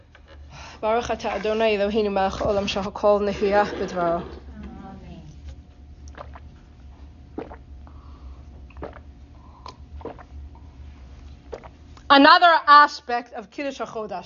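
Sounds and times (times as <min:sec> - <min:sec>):
speech: 0:00.8 - 0:04.4, 0:12.1 - 0:14.2
person gulping and swallowing water during a talk: 0:06.0 - 0:10.8, 0:11.4 - 0:12.1.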